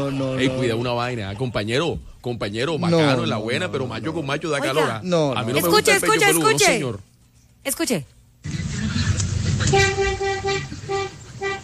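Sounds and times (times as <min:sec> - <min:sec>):
speech: 0:00.0 - 0:08.6, 0:09.7 - 0:11.0
engine and traffic noise: 0:08.4 - 0:11.6
truck-style vehicle horn honking: 0:09.5 - 0:11.6.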